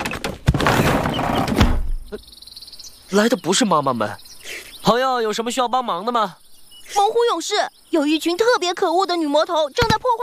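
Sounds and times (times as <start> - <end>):
door opening with solid thunks: 0.0 - 2.1
speech: 2.1 - 2.4, 3.1 - 10.2.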